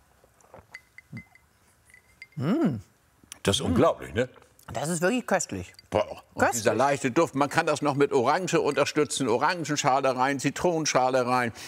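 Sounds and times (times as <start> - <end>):
glasses clinking in a toast: 0.6 - 2.5, 5.6 - 10.0
speech: 2.4 - 11.6.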